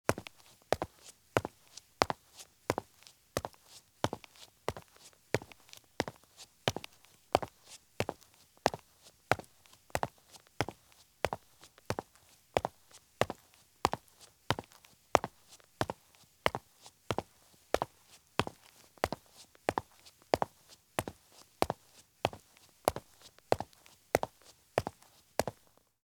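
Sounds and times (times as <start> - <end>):
medium running shoes walking at fast pace on concrete: 0.1 - 25.8.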